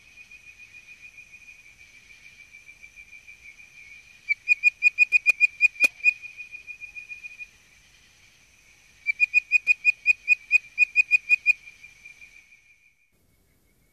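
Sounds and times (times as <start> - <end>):
Hyla avivoca bird-voiced treefrog whistling: 4.2 - 7.5, 9.0 - 12.4.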